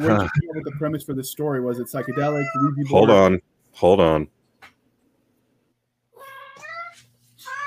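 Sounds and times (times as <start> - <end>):
speech: 0.0 - 4.4
cat meowing: 1.9 - 2.9, 6.1 - 7.6.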